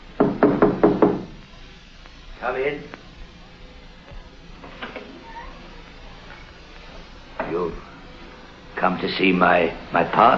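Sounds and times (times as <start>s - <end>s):
firm knocks on the wooden door of a caretaker's cottage on a park estate: 0.2s - 1.4s
speech: 2.4s - 3.0s, 9.0s - 10.3s.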